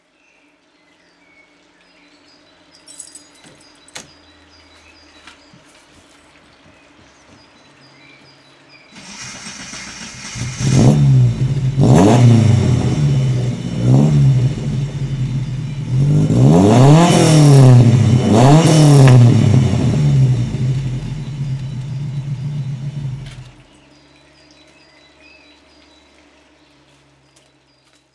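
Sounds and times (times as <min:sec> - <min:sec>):
engine running: 0:09.0 - 0:27.5.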